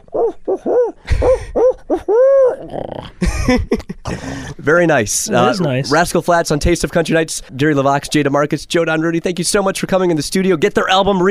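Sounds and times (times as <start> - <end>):
human voice imitating an owl call: 0.0 - 3.2
speech: 2.1 - 11.2.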